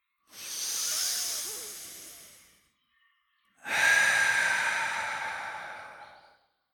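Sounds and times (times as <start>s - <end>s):
deep breathing in and out: 0.3s - 2.6s, 3.6s - 6.4s.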